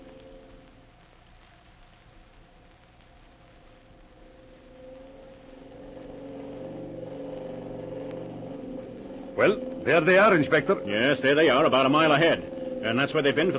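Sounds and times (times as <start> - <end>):
gas motorboat engine on a river at full throttle: 5.6 - 13.5
speech: 9.4 - 13.5.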